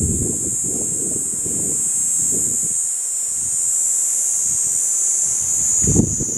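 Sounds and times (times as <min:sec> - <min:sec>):
gusts of wind: 0:00.0 - 0:02.8, 0:05.3 - 0:06.3
Kaempfer cicada droning: 0:00.0 - 0:06.3.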